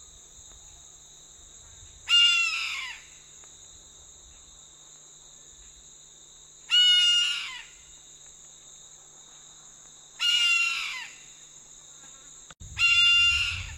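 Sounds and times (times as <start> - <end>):
high insect-like hum: 0.0 - 13.7
red-throated caracara giving harsh raspy calls: 2.1 - 3.1, 6.7 - 7.8, 10.2 - 11.3, 12.8 - 13.7
low rumble: 12.6 - 13.7.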